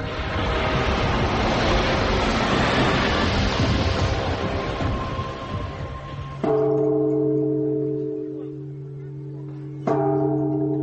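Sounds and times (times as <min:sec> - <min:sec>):
loud broad rumbling noise: 0:00.0 - 0:09.8
temple bell ringing: 0:06.2 - 0:10.8.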